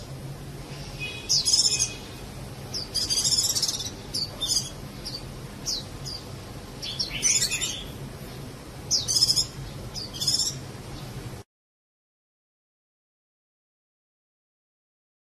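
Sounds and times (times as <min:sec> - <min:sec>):
low background hum: 0:00.0 - 0:11.5
Java sparrow chirping: 0:00.7 - 0:11.2.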